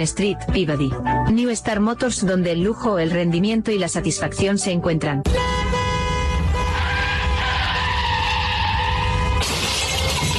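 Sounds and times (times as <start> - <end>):
speech: 0.0 - 5.8
car tires skidding: 6.7 - 9.8
car crash: 6.9 - 10.3.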